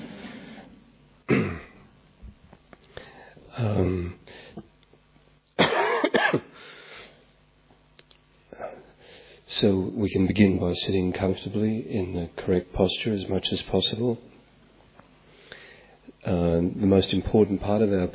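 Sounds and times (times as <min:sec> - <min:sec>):
quiet breathing: 0:00.0 - 0:01.0, 0:02.8 - 0:04.7, 0:08.5 - 0:09.5, 0:15.2 - 0:16.2
person coughing: 0:01.3 - 0:01.9, 0:03.6 - 0:04.2, 0:05.6 - 0:06.6
speech: 0:09.6 - 0:14.3, 0:16.3 - 0:18.1.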